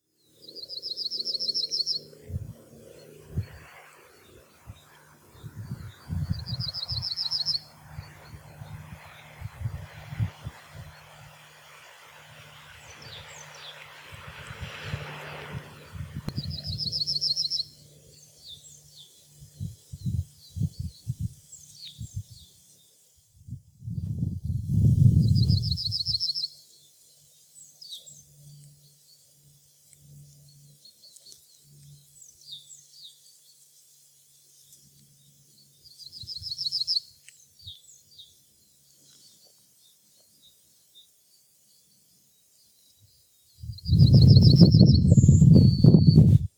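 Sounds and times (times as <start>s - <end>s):
yellowhammer singing in Grimsvik Urshult: 0.0s - 13.9s, 15.8s - 23.0s, 25.0s - 46.3s.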